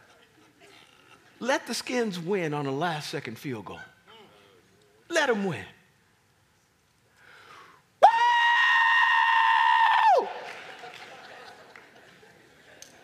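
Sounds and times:
laughter: 0.0 - 1.4, 10.3 - 13.0
speech: 1.4 - 3.9, 5.2 - 5.8
loud sustained high-pitched scream in celebration: 8.0 - 10.3.

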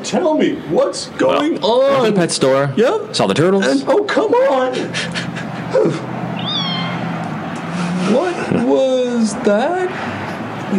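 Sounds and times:
speech: 0.1 - 6.1, 8.1 - 10.7
laughter: 4.6 - 6.3, 7.6 - 9.1
kitten meowing: 6.4 - 7.2.

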